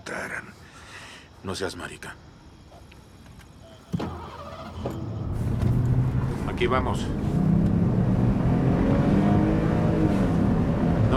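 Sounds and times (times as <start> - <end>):
speech: 1.4 - 2.3, 6.6 - 7.4
unmarked police patrol car engine starting and accelerating: 4.0 - 11.1.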